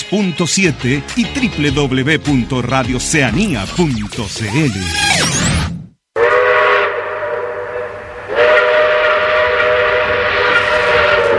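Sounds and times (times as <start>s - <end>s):
speech: 0.1s - 5.5s
steam train whistle as the train departs: 6.2s - 11.3s.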